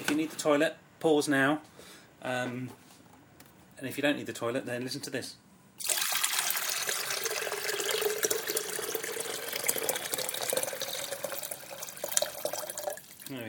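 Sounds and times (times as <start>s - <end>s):
speech: 0.2s - 2.8s, 3.8s - 6.0s
kettle being filled with water from a tap: 5.8s - 13.4s.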